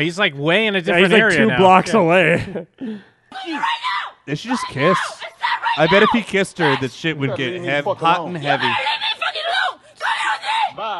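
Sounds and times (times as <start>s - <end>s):
speech: 0.0s - 9.0s
woman screaming in high-pitched bursts: 3.3s - 6.8s, 8.6s - 10.8s.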